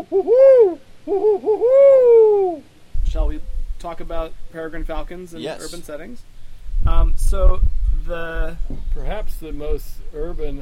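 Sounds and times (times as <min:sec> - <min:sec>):
barred owl hooting in an urban neighborhood: 0:00.0 - 0:02.7
speech: 0:00.0 - 0:10.5.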